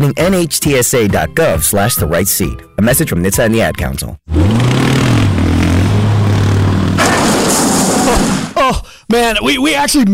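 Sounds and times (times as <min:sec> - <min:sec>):
speech: 0:00.0 - 0:04.6, 0:08.7 - 0:10.1
new off-road side-by-side engine revving while climbing the Beartooths: 0:04.3 - 0:08.6
rough clattering and gravelly scraping: 0:06.7 - 0:08.6.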